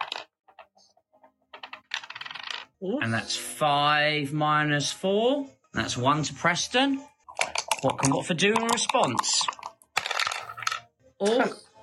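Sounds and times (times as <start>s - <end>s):
dice tossed and rattling across a hard surface: 0.0s - 0.7s, 1.5s - 2.8s, 7.3s - 10.8s
speech: 2.8s - 7.1s, 7.8s - 9.6s, 11.2s - 11.6s.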